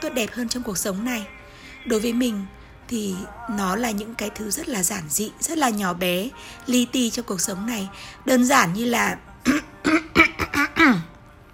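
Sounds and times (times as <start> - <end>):
speech: 0.0 - 11.1
person coughing: 9.4 - 11.1.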